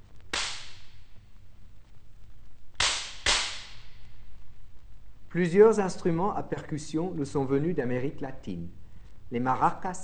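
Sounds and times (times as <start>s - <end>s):
orchestral slapstick of two hinged flat wooden boards snapped together: 0.3s - 0.9s, 2.8s - 3.9s
speech: 5.4s - 10.0s.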